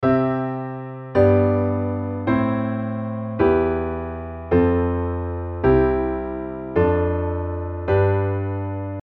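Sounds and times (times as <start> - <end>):
piano canon: 0.0 - 9.0.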